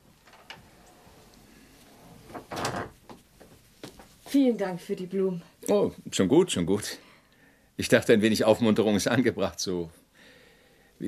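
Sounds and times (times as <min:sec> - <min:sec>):
door closing with a solid thud: 0:02.2 - 0:03.1
speech: 0:04.3 - 0:07.0, 0:07.8 - 0:10.0.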